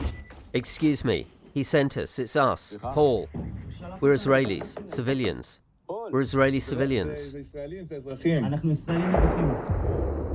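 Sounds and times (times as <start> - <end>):
speech: 0.5 - 10.0
gunfire aimed at fleeing civilians: 9.0 - 10.3.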